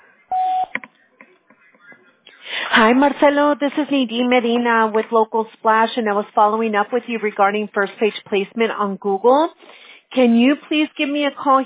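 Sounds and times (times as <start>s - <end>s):
answering machine message beep: 0.3s - 0.8s
speech: 2.8s - 11.6s.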